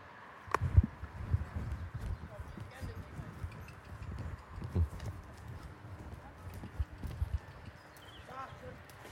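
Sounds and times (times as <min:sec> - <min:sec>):
outdoor ambience: 0:00.0 - 0:09.0
horse hooves clip-clopping: 0:00.5 - 0:09.0
faint voices: 0:01.2 - 0:09.0.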